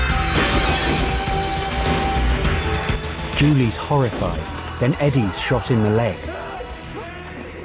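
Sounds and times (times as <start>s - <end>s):
crash of a person falling through a glass coffee table: 0.1s - 4.4s
glass coffee table shattering as a person falls through it: 0.3s - 3.4s
speech: 3.4s - 6.4s.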